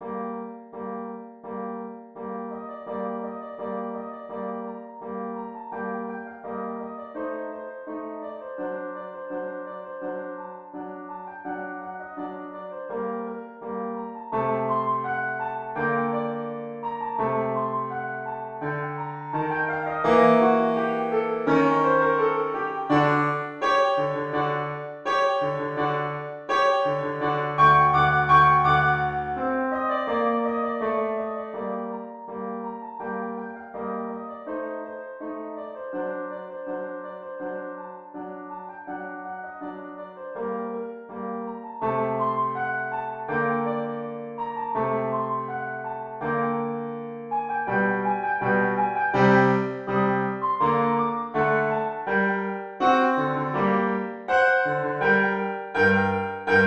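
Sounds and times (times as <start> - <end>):
symphony piano: 0.0 - 56.6.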